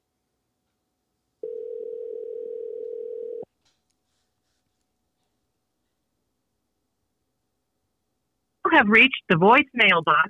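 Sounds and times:
telephone dial tone as a caller redials after a call cut off: 1.4s - 3.5s
speech: 8.8s - 10.2s.

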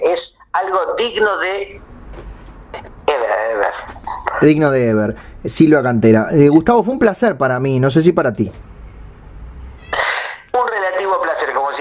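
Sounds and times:
low hum: 0.0s - 11.7s
speech: 0.2s - 2.3s, 3.5s - 8.7s
cat meowing at the door: 9.8s - 10.3s.

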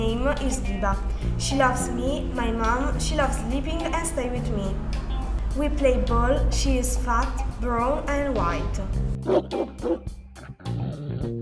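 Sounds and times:
speech: 0.3s - 5.0s, 5.6s - 10.2s
dog barking: 9.2s - 10.0s.

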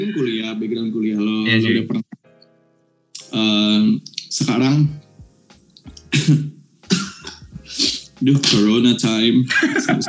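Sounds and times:
speech: 0.0s - 2.0s, 4.3s - 5.0s, 6.3s - 6.5s, 8.2s - 10.0s
harsh coughs: 6.0s - 7.4s
laughter: 9.5s - 10.0s.

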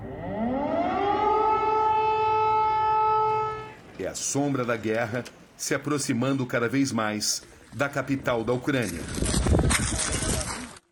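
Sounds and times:
air raid warning sirens wailing: 0.0s - 4.0s
speech: 4.1s - 9.6s.

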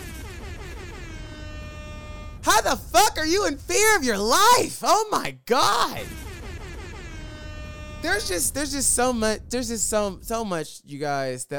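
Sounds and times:
air horn blast: 0.0s - 4.0s, 6.0s - 9.6s
speech: 2.5s - 6.2s, 8.0s - 11.5s.

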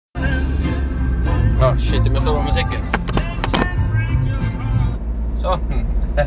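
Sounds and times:
road rumble inside a moving car: 0.2s - 6.2s
speech: 1.6s - 3.0s, 5.4s - 6.2s.

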